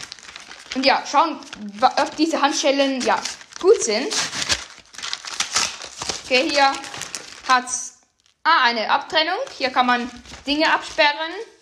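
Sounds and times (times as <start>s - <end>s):
paper or plastic wrapping crinkling and rustling as a small package is opened: 0.0s - 11.6s
speech: 0.7s - 4.4s, 6.3s - 6.9s, 7.5s - 11.5s.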